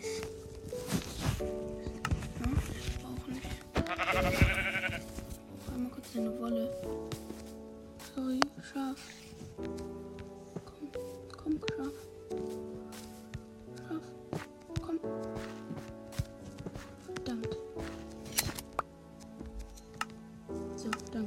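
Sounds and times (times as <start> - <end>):
rustling movement sounds: 0.0 - 20.8
low steady background: 0.0 - 21.2
sheep bleating: 3.8 - 5.1.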